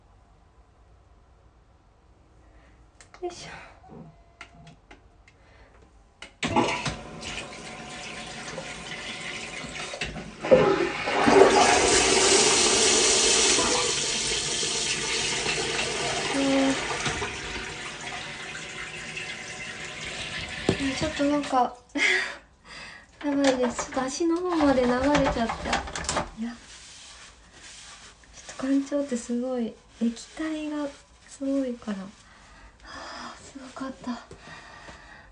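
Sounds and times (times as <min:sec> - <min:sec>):
speech: 0:03.2 - 0:04.2, 0:21.2 - 0:22.2, 0:23.2 - 0:26.7, 0:28.6 - 0:32.2, 0:33.8 - 0:34.6
toilet flushing: 0:06.4 - 0:21.7.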